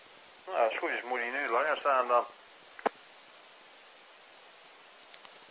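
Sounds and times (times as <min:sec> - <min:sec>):
static hiss of radio repeater held open by interference: 0:00.5 - 0:04.1
speech: 0:00.7 - 0:02.4.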